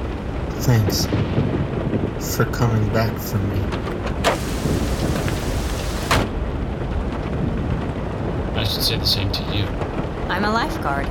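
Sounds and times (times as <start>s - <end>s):
heavy hurricane rain pouring: 0.0s - 11.0s
torrential hurricane wind gusts buffeting a car: 0.0s - 11.0s
speech: 0.6s - 4.8s, 8.6s - 11.0s
sharp bursts of louder spray or buffeting: 4.2s - 6.3s.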